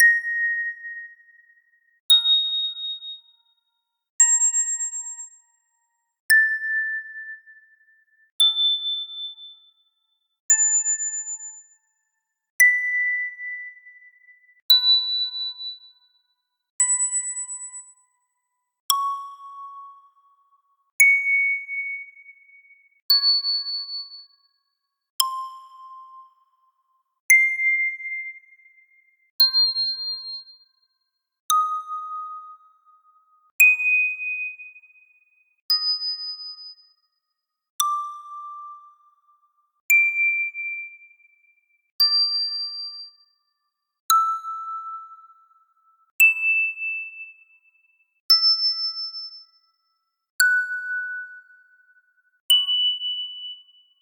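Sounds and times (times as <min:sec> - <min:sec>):
ding: 0:00.0 - 0:54.0.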